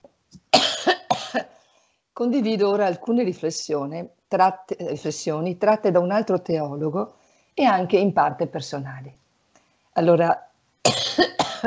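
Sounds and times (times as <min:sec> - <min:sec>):
harsh double-burst coughs: 0:00.5 - 0:01.5, 0:10.9 - 0:11.6
soft breathy sounds: 0:01.5 - 0:02.1, 0:07.1 - 0:07.6, 0:09.5 - 0:10.0
speech: 0:02.2 - 0:09.2, 0:10.0 - 0:11.6.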